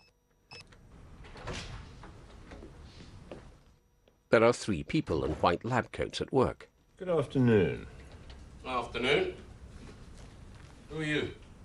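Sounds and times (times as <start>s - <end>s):
electronic keypad beeps for an entry code: 0.0s - 0.7s
speech: 4.3s - 8.0s, 8.6s - 9.4s, 10.9s - 11.4s.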